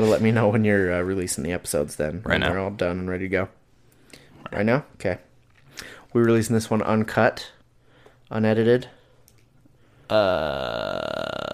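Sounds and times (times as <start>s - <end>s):
speech: 0.0s - 3.6s, 4.5s - 7.6s, 8.3s - 9.0s, 10.1s - 11.5s
loud deep burp: 10.1s - 11.5s.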